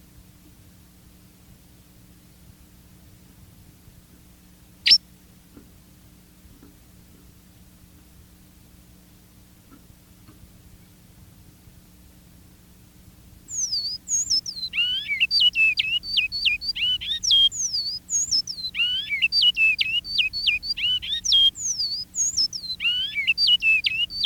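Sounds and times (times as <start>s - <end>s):
faint constant hum: 0.0s - 24.2s
Great-billed seed finch singing: 13.5s - 24.2s.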